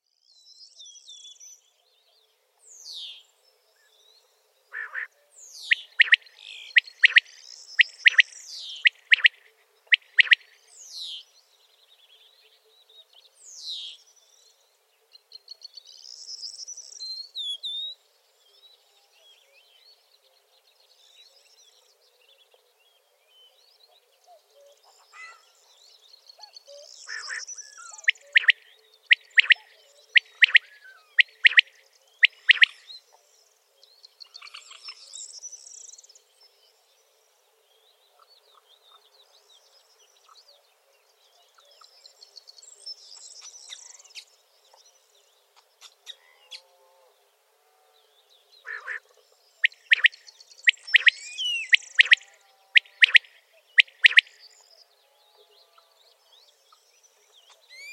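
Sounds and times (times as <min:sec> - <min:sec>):
common quail calling: 0:04.7 - 0:05.1, 0:05.7 - 0:10.5, 0:27.1 - 0:32.8, 0:48.6 - 0:49.0, 0:49.7 - 0:54.3.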